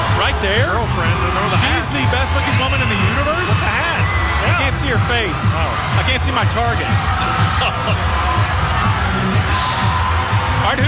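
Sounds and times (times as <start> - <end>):
large outdoor crowd cheering and whooping at a parade: 0.0 - 10.8
speech: 0.3 - 9.8, 10.6 - 10.8
laughter: 7.2 - 8.5.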